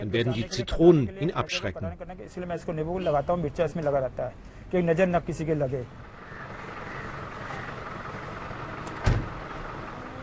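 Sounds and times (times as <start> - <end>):
speech: 0.0 - 6.0
old Ambassador taxi engine rattling and clattering: 6.0 - 10.1.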